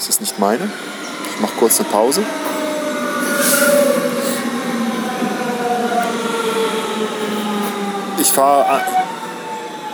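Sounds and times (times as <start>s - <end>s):
speech: 0.0s - 2.6s, 8.4s - 9.0s
train rolling past: 0.3s - 8.2s.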